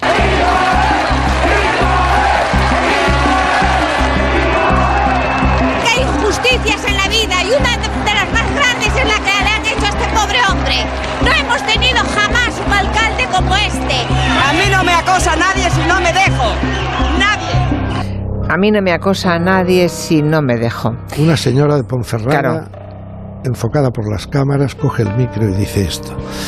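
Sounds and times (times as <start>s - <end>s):
crowd of women and men shouting and chanting in support: 0.0s - 18.0s
speech: 18.6s - 22.8s, 23.4s - 26.4s.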